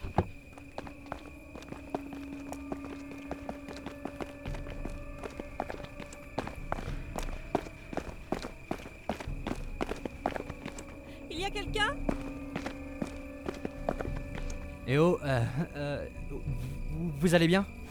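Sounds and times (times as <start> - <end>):
hurried footsteps of a person rushing to check on someone: 0.0 - 15.0
speech: 11.5 - 12.2, 14.9 - 17.8.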